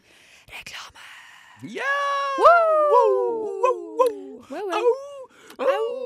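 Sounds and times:
speech: 1.6s - 2.1s
people imitating howling puppies and wolves in a radio studio: 1.7s - 6.0s.

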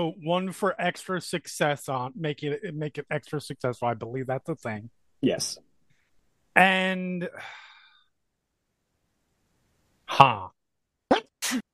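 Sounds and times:
speech: 0.0s - 5.7s, 6.6s - 7.7s, 10.1s - 10.6s, 11.5s - 11.7s
person sneezing: 11.1s - 11.7s.

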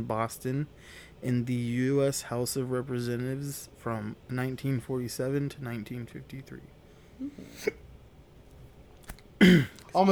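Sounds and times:
speech: 0.0s - 7.8s, 9.4s - 10.1s
person hiccuping: 7.2s - 7.8s, 9.4s - 9.8s.

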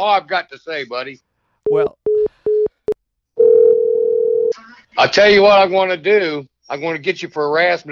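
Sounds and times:
speech: 0.0s - 2.0s, 5.0s - 7.8s
telephone beeps after call drops: 1.7s - 2.7s, 3.4s - 4.6s
telephone dial tone after call drops: 3.4s - 4.5s.

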